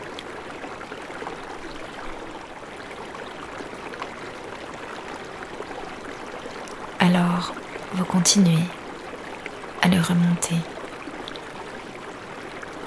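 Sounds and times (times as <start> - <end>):
brook babbling and splashing: 0.0 - 12.8
speech: 7.4 - 8.8, 9.8 - 10.7.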